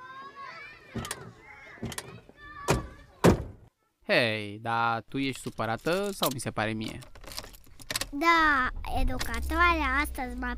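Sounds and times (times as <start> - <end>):
speech: 1.0 - 2.0, 4.1 - 7.2, 8.1 - 10.5
car doors thudding shut: 1.0 - 3.7.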